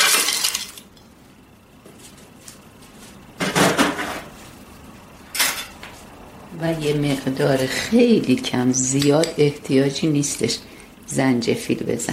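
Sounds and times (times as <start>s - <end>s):
ice cubes clinking into a glass with mint leaves for a drink: 0.0s - 0.8s
speech: 6.6s - 12.1s.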